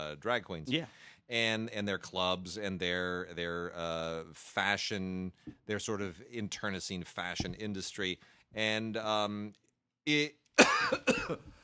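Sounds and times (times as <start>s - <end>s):
speech: 0.1s - 11.6s
person coughing: 10.6s - 11.5s.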